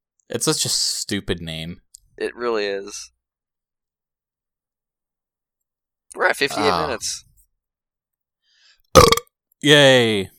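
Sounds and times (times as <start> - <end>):
speech: 0.3 - 3.2, 6.1 - 7.3, 9.0 - 10.3
person burping: 9.0 - 9.3.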